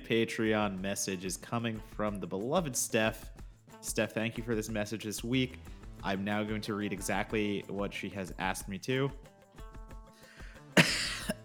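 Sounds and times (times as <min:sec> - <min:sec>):
soft rhythmic musical backing: 0:00.0 - 0:11.4
speech: 0:00.1 - 0:09.3
laughter: 0:10.8 - 0:11.4
throat clearing: 0:10.8 - 0:11.4.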